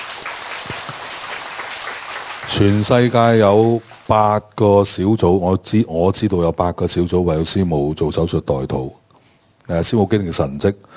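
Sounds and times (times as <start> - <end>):
congregation applauding: 0.0 - 4.2
speech: 2.5 - 9.0, 9.7 - 10.9.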